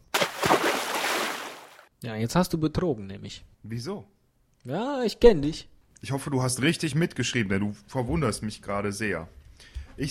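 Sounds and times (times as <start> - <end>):
sharp water splash with sloshing and spattering: 0.0 - 1.9
speech: 2.0 - 10.0.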